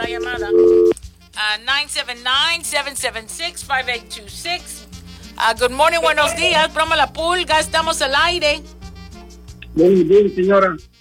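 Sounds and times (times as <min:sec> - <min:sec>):
telephone tone after a dropped call on a radio phone-in line: 0:00.0 - 0:01.0
speech: 0:01.4 - 0:04.8, 0:05.4 - 0:08.8, 0:09.8 - 0:10.9.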